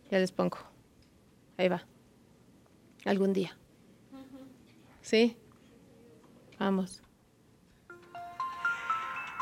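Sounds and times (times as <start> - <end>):
speech: 0.1 - 0.7, 1.6 - 1.9, 3.0 - 3.6, 5.0 - 5.4, 6.6 - 7.0
Samsung phone startup sound logo jingle: 7.9 - 9.3.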